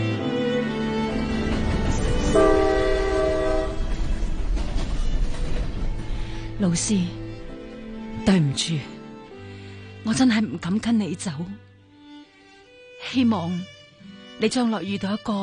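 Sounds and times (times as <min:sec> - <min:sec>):
train horn at a railway station: 0:00.2 - 0:04.0
rumble of rolling train wagons at a railway station: 0:00.8 - 0:08.4
speech: 0:06.6 - 0:07.2, 0:08.2 - 0:09.0, 0:10.0 - 0:11.7, 0:13.1 - 0:13.8, 0:14.4 - 0:15.4.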